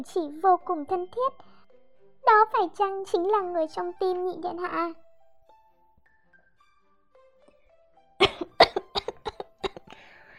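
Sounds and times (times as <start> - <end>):
speech: 0.0 - 1.6, 2.2 - 5.0
person choking on tea and coughing: 8.2 - 9.9
breathy wheeze: 9.7 - 10.3.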